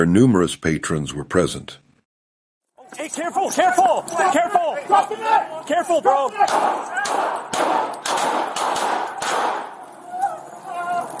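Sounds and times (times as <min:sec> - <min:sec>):
speech: 0:00.0 - 0:01.8, 0:02.9 - 0:08.8
gunshots during a police confrontation in a restaurant's outdoor seating area: 0:06.4 - 0:09.8.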